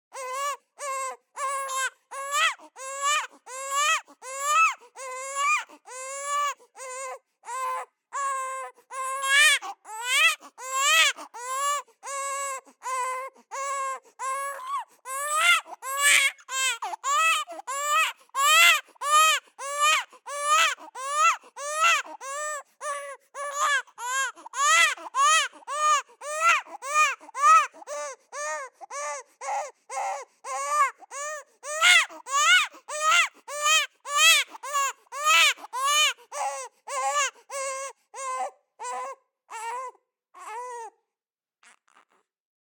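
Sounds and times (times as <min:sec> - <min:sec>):
3-month-old baby boy screaming: 0:00.1 - 0:12.4, 0:13.0 - 0:22.5, 0:23.4 - 0:40.9.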